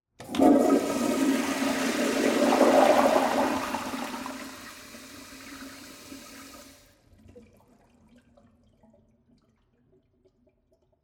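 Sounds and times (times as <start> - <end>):
toilet flushing in a public bathroom: 0.2 - 9.0.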